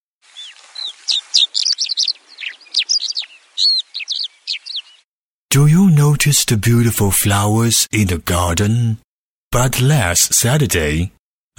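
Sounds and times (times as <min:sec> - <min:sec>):
birds singing and chirping at a nest in a tree: 0:00.3 - 0:05.1
speech: 0:05.5 - 0:11.5.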